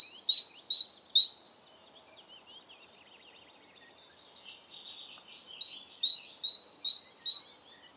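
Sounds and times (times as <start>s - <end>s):
great tit Parus major sharp high double notes and ringing two-note phrases: 0.0s - 1.4s, 5.2s - 7.5s.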